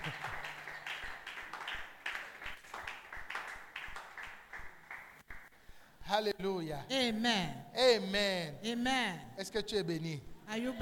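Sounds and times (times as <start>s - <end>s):
crowd clapping steadily together: 0.0s - 5.5s
speech: 6.1s - 10.8s.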